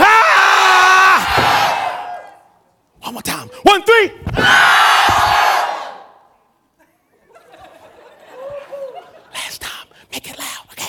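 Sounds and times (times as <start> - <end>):
audience giving a loud courtesy yell: 0.0 - 2.5, 4.4 - 6.3
laughter: 6.8 - 9.3.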